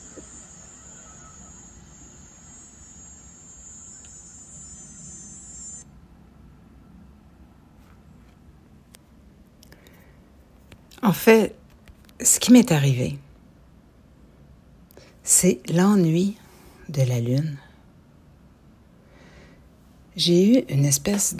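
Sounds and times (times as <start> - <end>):
cicadas singing with shrill drone: 0.0 - 5.8
distant lawnmower engine hum: 0.0 - 5.8
speech: 11.0 - 11.6, 12.2 - 13.3, 15.4 - 17.7, 20.2 - 21.3.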